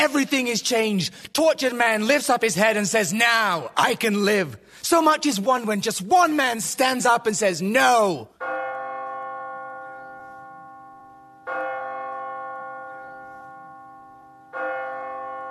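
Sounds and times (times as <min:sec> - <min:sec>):
speech: 0:00.0 - 0:08.6
church bell tolling: 0:07.8 - 0:15.5.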